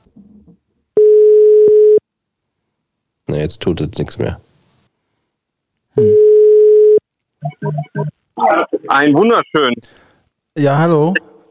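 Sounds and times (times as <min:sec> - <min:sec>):
steady electronic telephone tone: 0:01.0 - 0:02.0, 0:06.0 - 0:09.7
speech: 0:03.4 - 0:04.5, 0:08.9 - 0:10.0, 0:10.6 - 0:11.3.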